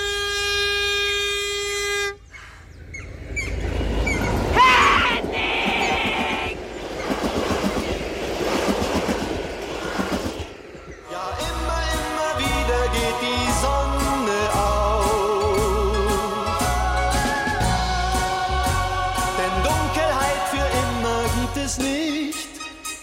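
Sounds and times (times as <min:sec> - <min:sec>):
sustained train horn blast: 0:00.0 - 0:02.3
train rumbling and clattering along the rails: 0:00.0 - 0:22.1.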